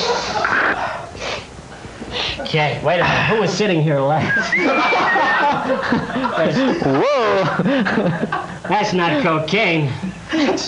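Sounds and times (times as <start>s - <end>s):
loud sniffing at a couch cushion: 0.0s - 1.5s
speech: 2.5s - 10.6s
laughter: 4.2s - 9.2s.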